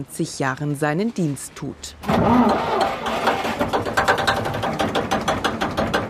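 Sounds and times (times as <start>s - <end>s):
speech: 0.0s - 3.0s
old boat engine sputtering into life: 2.0s - 5.4s
old boat engine knocking: 2.1s - 6.0s.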